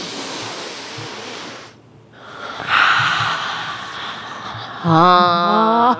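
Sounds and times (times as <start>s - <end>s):
deep noisy breathing: 0.0s - 5.6s
person humming: 2.2s - 5.9s.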